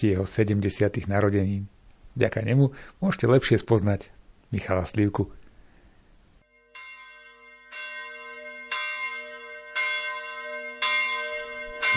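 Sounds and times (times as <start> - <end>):
speech: 0.0 - 5.4
village church bells ringing: 6.5 - 11.9.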